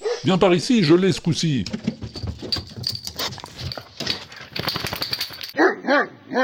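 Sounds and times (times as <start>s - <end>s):
busy cluttered noise: 0.0s - 6.4s
speech: 0.2s - 1.9s, 5.9s - 6.4s
dog barking sharply: 5.6s - 6.4s.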